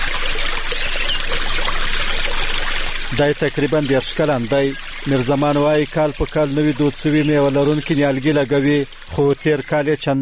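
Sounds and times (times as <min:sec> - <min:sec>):
irrigation water flowing in an autumn orchard: 0:00.0 - 0:10.2
speech: 0:03.2 - 0:10.2.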